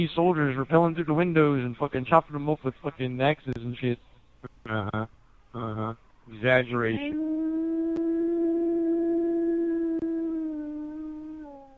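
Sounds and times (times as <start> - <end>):
speech: 0.0 - 7.6
dog howling at a passing fire truck: 6.9 - 11.7.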